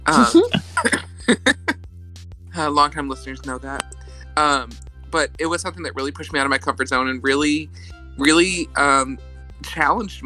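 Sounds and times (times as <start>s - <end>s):
speech: 0.1s - 0.6s, 2.6s - 3.8s, 4.4s - 10.2s
person coughing: 0.1s - 1.7s.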